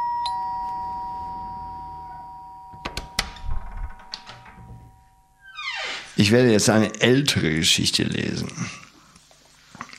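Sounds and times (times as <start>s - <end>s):
doorbell chiming: 0.0s - 5.5s
sharp clunks and rattling knocks: 2.8s - 5.0s
speech: 6.2s - 8.8s.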